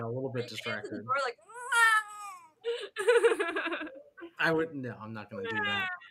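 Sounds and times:
speech: 0.2 - 1.8, 3.0 - 6.0
laughter: 0.4 - 1.2, 2.7 - 4.1, 5.4 - 6.0
person imitating a cat meow: 5.4 - 6.0.

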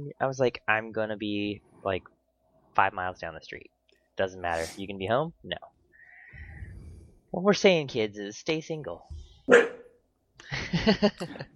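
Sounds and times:
speech: 0.0 - 2.2, 2.8 - 5.7, 7.3 - 9.8, 10.4 - 11.5
dog barking: 9.5 - 10.0
laughter: 10.4 - 11.5.

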